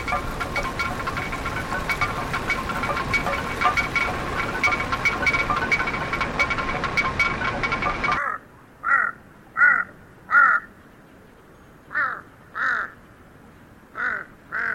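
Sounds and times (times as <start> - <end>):
rustling noise: 0.0 - 8.2
huge Tibetan crow cawing in a high field: 8.2 - 10.7, 11.9 - 13.0, 14.0 - 14.7.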